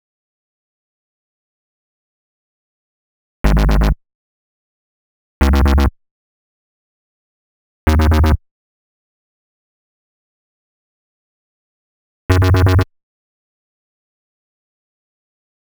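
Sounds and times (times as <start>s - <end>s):
D#m bass: 3.4s - 4.0s, 5.4s - 5.9s, 7.9s - 8.4s, 12.3s - 12.9s.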